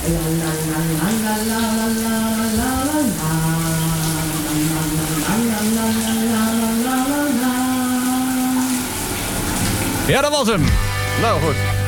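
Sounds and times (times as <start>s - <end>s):
person singing a slow wavering melody: 0.0s - 8.8s
shower tap running water: 0.0s - 11.8s
speech: 0.1s - 2.7s, 10.1s - 11.7s.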